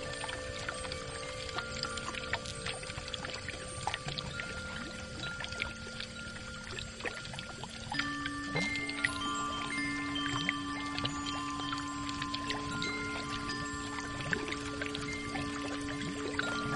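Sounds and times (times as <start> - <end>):
bubbling pouring water: 0.0 - 16.7
deeper ringing tone: 0.0 - 16.7
underwater wind chimes shaking: 0.0 - 16.7.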